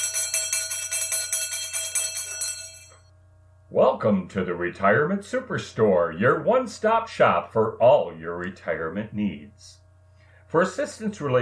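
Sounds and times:
bright bell ringing in quick repeated strikes: 0.0 - 3.1
speech: 3.7 - 9.8, 10.5 - 11.3.

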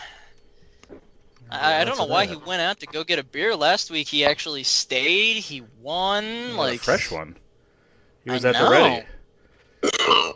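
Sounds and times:
speech: 1.5 - 7.4, 8.2 - 9.1
loud belch: 9.8 - 10.3.

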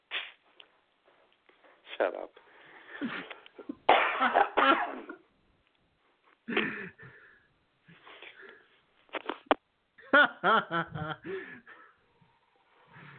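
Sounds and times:
speech: 3.0 - 3.4, 10.4 - 11.6
man coughing in harsh bursts: 3.9 - 5.2.

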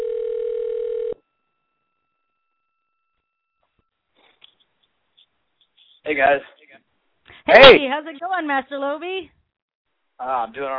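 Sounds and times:
telephone dial tone: 0.0 - 1.2
speech: 6.1 - 6.6, 7.4 - 9.4, 10.2 - 10.7.

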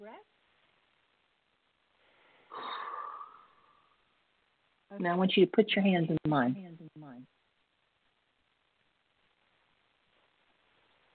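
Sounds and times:
faint deep calming breath before a prayer: 2.0 - 3.9
speech: 4.9 - 7.4.

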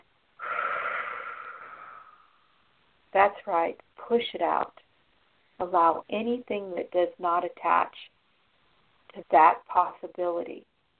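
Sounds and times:
deep breath in: 0.4 - 2.5
speech: 3.2 - 4.9, 5.6 - 8.1, 9.1 - 10.7.

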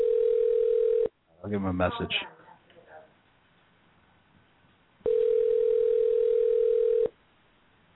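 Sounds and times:
telephone ringback tone on an outgoing call: 0.0 - 1.1, 5.0 - 7.1
speech: 1.5 - 2.4.

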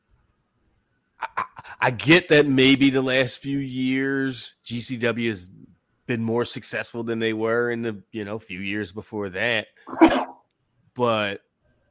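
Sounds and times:
speech: 1.8 - 10.3, 11.0 - 11.4
sneeze: 9.9 - 10.4.

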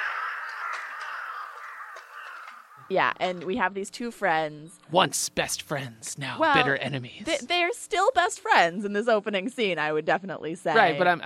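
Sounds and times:
crows cawing: 0.0 - 3.2
speech: 2.9 - 11.2.

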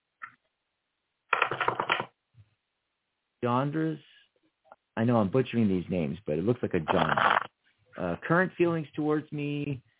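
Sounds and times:
tarot cards shuffling: 1.4 - 2.1
speech: 3.4 - 4.1, 5.0 - 9.9.

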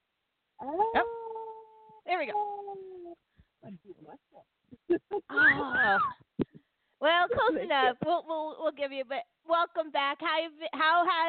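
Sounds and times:
speech: 0.6 - 1.1, 2.1 - 6.3, 7.0 - 11.2
person imitating a wolf howl: 0.6 - 2.0
laughter: 4.8 - 6.1.

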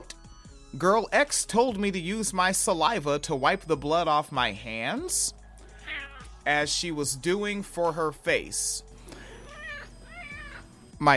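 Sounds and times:
speech: 0.7 - 5.4, 6.4 - 8.9, 11.0 - 11.1
cat meowing: 5.8 - 6.4, 9.4 - 10.7.

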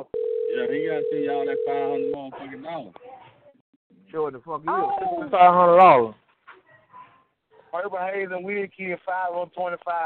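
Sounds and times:
steady telephone tone while a call is placed: 0.0 - 2.2
speech: 0.0 - 3.3, 4.1 - 6.2, 7.7 - 10.0.

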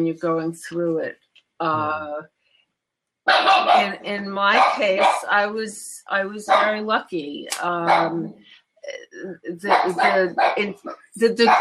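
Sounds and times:
speech: 0.0 - 2.4, 3.2 - 11.6
dog yelping: 3.3 - 3.8
dog barking: 3.3 - 3.9, 4.6 - 5.2, 6.5 - 6.7, 9.7 - 10.6.

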